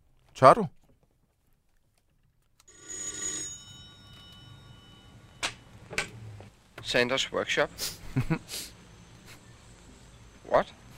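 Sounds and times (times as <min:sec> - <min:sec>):
speech: 0:00.4 - 0:00.8, 0:06.9 - 0:08.7, 0:10.5 - 0:10.8
telephone bell ringing: 0:02.7 - 0:05.9.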